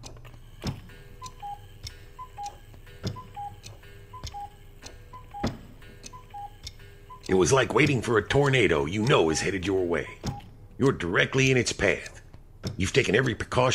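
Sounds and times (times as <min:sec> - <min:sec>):
faint mechanical chirps: 0:00.0 - 0:10.6
cuckoo clock ticking: 0:00.9 - 0:13.7
speech: 0:07.3 - 0:10.2, 0:10.8 - 0:12.2, 0:12.8 - 0:13.7.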